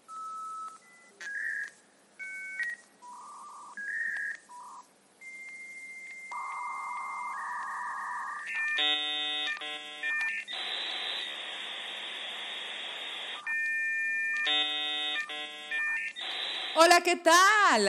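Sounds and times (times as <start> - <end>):
telephone dialing tones on radio show call-in phone lines: 0.1 - 11.3, 13.4 - 16.8
speech: 16.8 - 17.8.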